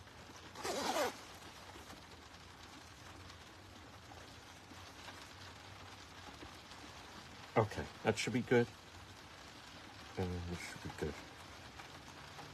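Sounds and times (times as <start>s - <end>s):
soft steady hiss: 0.0s - 12.5s
zipper being zipped closed: 0.6s - 1.2s
speech: 7.6s - 8.8s, 10.2s - 11.3s.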